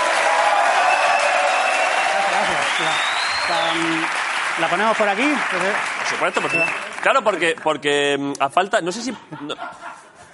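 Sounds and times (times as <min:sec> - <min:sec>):
live audience applause: 0:00.0 - 0:07.7
laughter: 0:02.0 - 0:03.0, 0:08.9 - 0:10.3
speech: 0:02.8 - 0:10.1.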